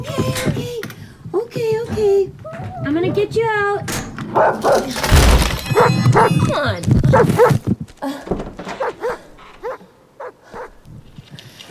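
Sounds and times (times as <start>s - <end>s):
speech: 0.0s - 0.9s, 1.5s - 8.4s
dog shut inside a house barking and yelping: 4.4s - 4.9s, 5.7s - 7.6s, 8.8s - 10.7s.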